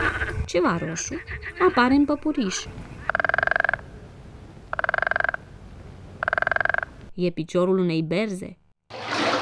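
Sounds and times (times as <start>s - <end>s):
frog croaking from the reeds: 0.0s - 7.1s
speech: 0.5s - 2.9s, 7.2s - 8.6s.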